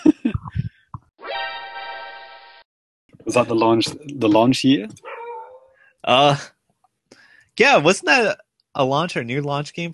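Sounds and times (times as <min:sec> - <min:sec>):
speech: 0:03.3 - 0:05.1, 0:06.0 - 0:06.6, 0:07.6 - 0:09.9
dog barking: 0:05.0 - 0:05.8.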